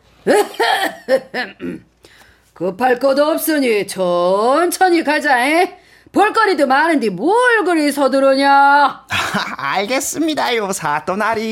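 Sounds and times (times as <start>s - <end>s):
speech: 0.2s - 1.9s, 2.6s - 11.5s
voice imitating a magistrate's fake coughs and throat clearing: 0.3s - 1.9s.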